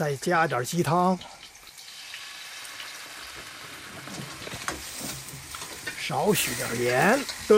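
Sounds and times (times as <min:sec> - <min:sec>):
speech: 0:00.0 - 0:01.4, 0:06.1 - 0:07.5
cattail shoots and vegetables stir-frying in a pan: 0:00.0 - 0:07.5.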